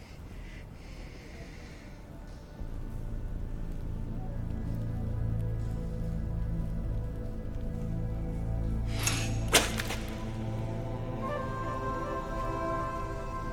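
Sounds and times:
low ambient rumble: 0.0s - 13.5s
whip lashes cracking as a captive is whipped: 8.9s - 10.4s.

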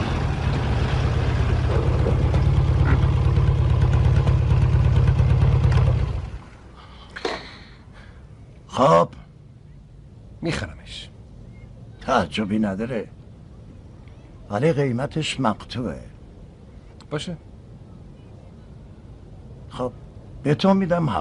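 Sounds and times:
motorcycle engine revving and idling: 0.2s - 6.4s
speech: 12.1s - 13.2s, 14.5s - 16.1s, 17.1s - 17.5s, 19.8s - 21.2s.

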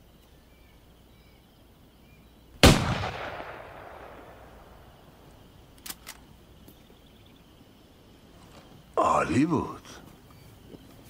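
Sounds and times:
single loud gunshot: 2.6s - 4.6s
gunshot echo: 2.6s - 5.0s
faint brief clicks: 5.7s - 6.8s
speech: 9.3s - 10.0s.

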